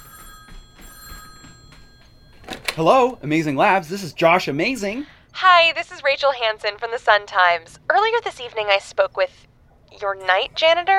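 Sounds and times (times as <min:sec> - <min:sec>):
telephone ringing in a laboratory office: 0:00.0 - 0:05.0
speech: 0:02.8 - 0:10.9.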